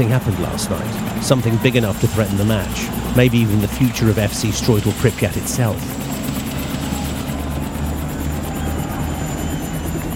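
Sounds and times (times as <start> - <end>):
speech: 0.0 - 6.4
helicopter rotor thumping: 0.0 - 10.1
whining helicopter engine: 0.0 - 10.1.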